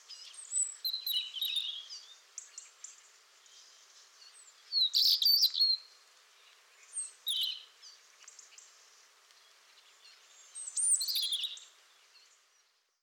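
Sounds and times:
European robin Erithacus rubecula singing: 0.0s - 8.7s, 9.4s - 12.8s.

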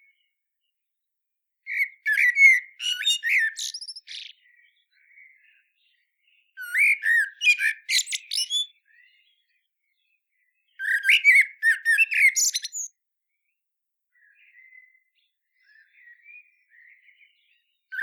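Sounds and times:
Eurasian blackbird Turdus merula chattering calls: 1.7s - 4.3s, 6.6s - 8.7s, 11.0s - 12.9s.

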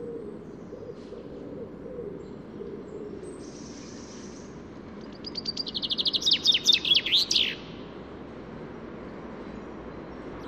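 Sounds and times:
common chaffinch Fringilla coelebs singing: 5.0s - 7.8s.

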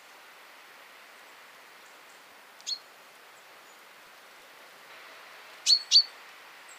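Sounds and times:
light steady hiss: 0.0s - 6.7s
common chaffinch Fringilla coelebs calling: 5.6s - 6.1s.

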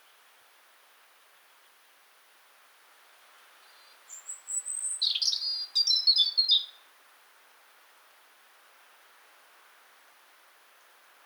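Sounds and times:
European robin singing: 3.7s - 6.8s.

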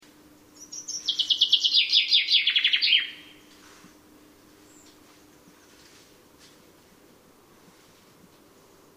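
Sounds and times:
faint steady low hum: 0.0s - 8.9s
common chaffinch song descending in steps: 0.6s - 3.4s.

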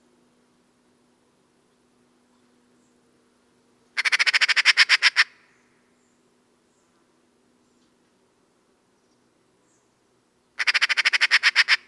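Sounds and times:
Eurasian magpie Pica pica giving a harsh chattering call: 4.0s - 5.4s, 10.6s - 11.8s.

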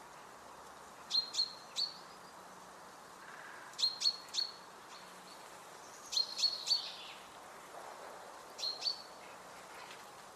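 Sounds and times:
steady background hiss: 0.0s - 10.3s
common chaffinch Fringilla coelebs calls: 1.1s - 2.2s, 3.3s - 5.1s, 5.9s - 7.2s, 8.6s - 9.1s.

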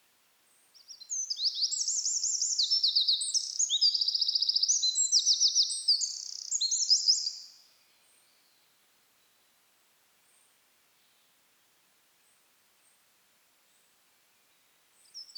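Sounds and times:
Eurasian wren Troglodytes troglodytes song: 0.8s - 7.6s.

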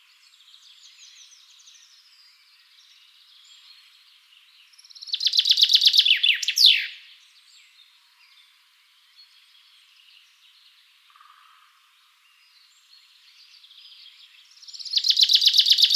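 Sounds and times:
common chaffinch Fringilla coelebs singing: 4.7s - 7.1s, 13.5s - 15.9s.

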